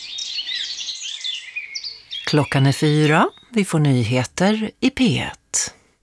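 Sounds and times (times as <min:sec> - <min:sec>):
busy birdsong of high chirps and trills: 0:00.0 - 0:03.9
speech: 0:02.3 - 0:05.8.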